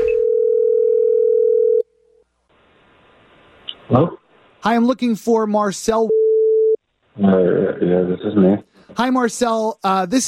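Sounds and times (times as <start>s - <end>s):
steady electronic tone from an outgoing phone call: 0.0s - 1.8s, 6.1s - 6.8s
speech: 3.9s - 6.2s, 7.2s - 10.2s.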